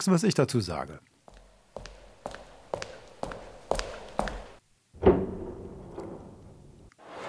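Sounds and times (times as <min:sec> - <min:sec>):
speech: 0:00.0 - 0:01.1
evenly paced footsteps: 0:01.3 - 0:06.9
door clunking open with a short creak: 0:05.0 - 0:06.9.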